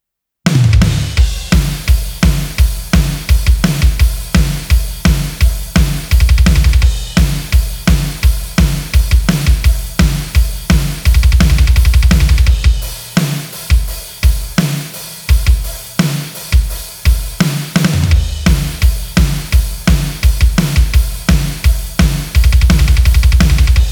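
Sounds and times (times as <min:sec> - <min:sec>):
heavy drums: 0:00.5 - 0:23.9.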